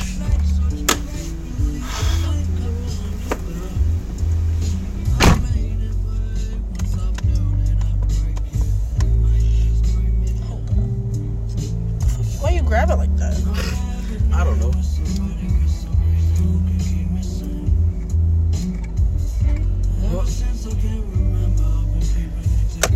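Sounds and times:
car doors thudding shut: 0.0s - 1.4s, 2.9s - 3.8s, 5.0s - 5.8s, 22.7s - 22.9s
parked car engines idling and moving off: 0.0s - 22.9s.

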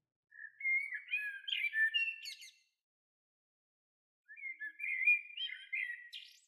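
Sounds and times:
blackbird singing fluty notes and twitters: 0.3s - 2.7s, 4.3s - 6.4s.

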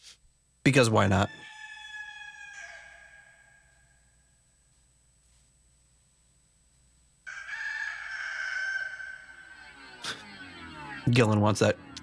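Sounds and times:
speech: 0.7s - 1.5s, 11.1s - 11.9s
rooster crowing: 1.3s - 4.2s, 7.3s - 11.1s.

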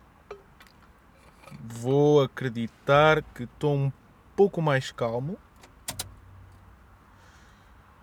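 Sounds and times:
speech: 1.6s - 5.5s
car key clicking in the ignition to switch off a car: 5.6s - 6.2s.

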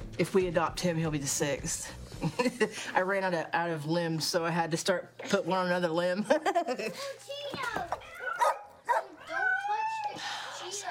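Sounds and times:
speech: 0.2s - 8.0s
laughter: 2.2s - 2.9s, 6.3s - 7.2s
two dogs at a house barking and yelping excitedly: 8.0s - 10.0s.

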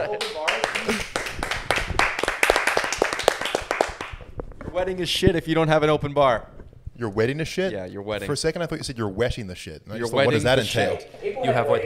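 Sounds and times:
speech: 0.0s - 1.0s, 4.8s - 11.8s
applause from a small group: 0.1s - 4.2s.

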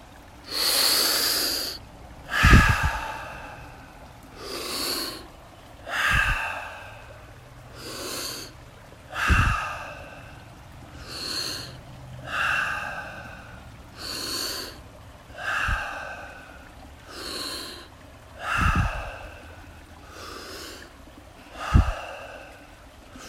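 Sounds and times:
deep slow breathing during a guided breathing exercise: 0.5s - 5.3s, 5.9s - 8.5s, 9.1s - 20.9s, 21.5s - 23.2s.

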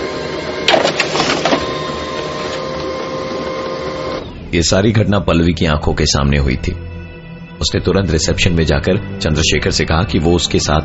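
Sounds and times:
printer whirring and grinding as jammed paper feeds through: 0.0s - 4.5s
speech: 4.5s - 6.9s, 7.6s - 10.8s.

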